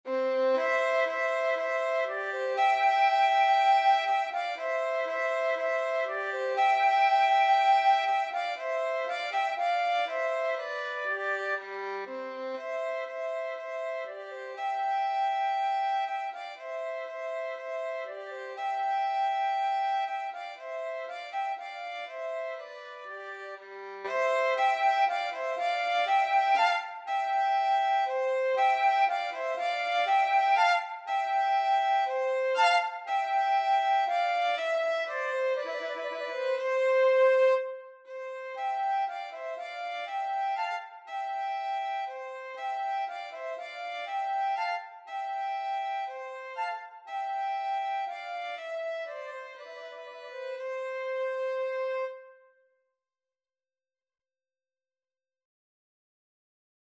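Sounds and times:
violin in a violin flute duet: 0.0 - 52.5
flute in a violin flute duet: 0.0 - 52.6.

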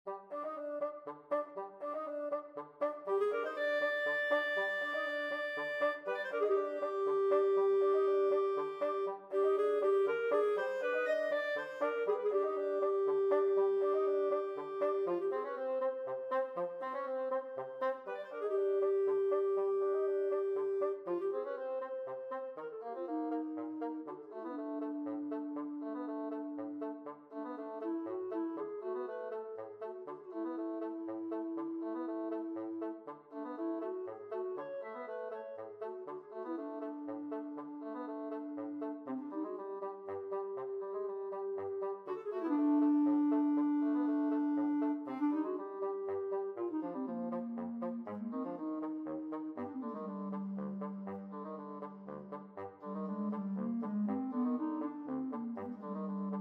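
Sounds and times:
clarinet and bassoon duet: 0.0 - 56.3.

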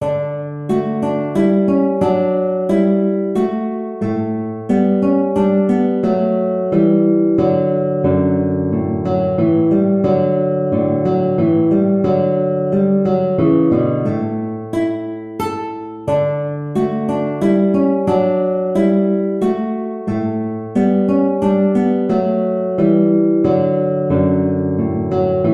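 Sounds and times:
guitar playing a minuet: 0.0 - 25.5.

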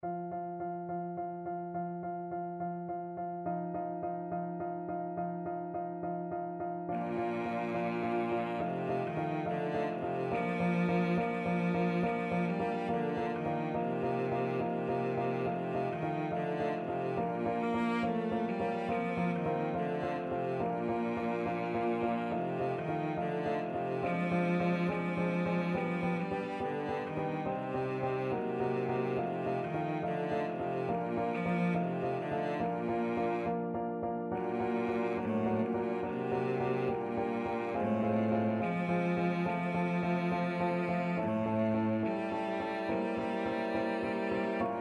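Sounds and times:
cello: 0.0 - 44.8.

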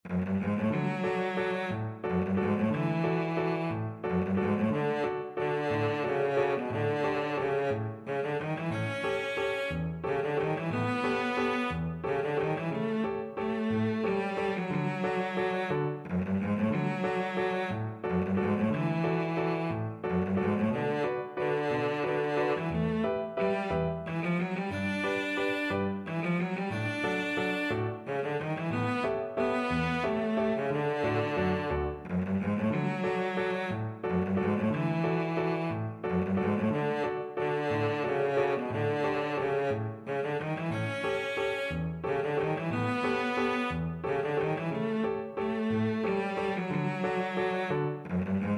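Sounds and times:
cello playing wedding dance music: 0.0 - 48.5.

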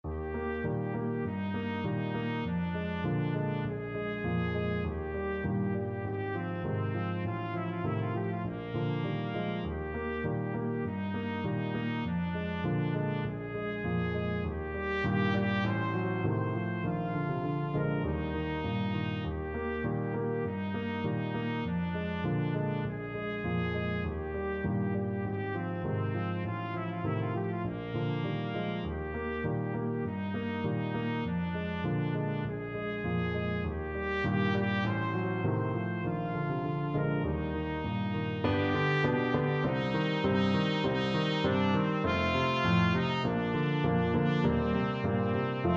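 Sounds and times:
trumpet playing andante: 0.1 - 45.7.

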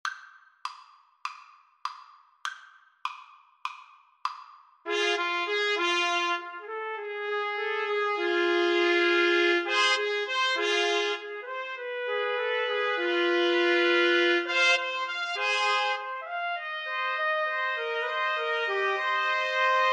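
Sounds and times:
trumpet trio playing: 4.9 - 19.9.

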